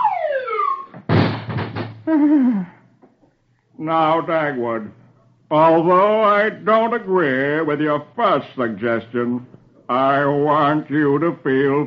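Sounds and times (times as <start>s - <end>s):
falling whistle-like wailing tones in a comic sound effect: 0.0s - 0.9s
office door banging open with a heavy rattling crash: 1.0s - 2.1s
speech: 2.1s - 2.8s, 3.8s - 11.8s.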